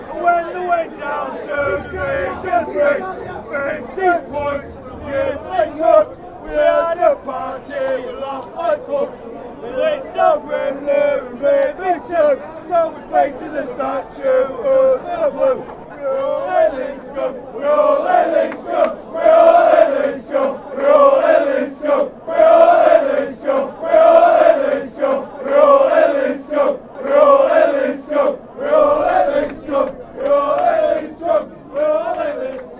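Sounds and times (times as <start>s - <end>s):
fans chanting on TV: 0.0s - 32.7s.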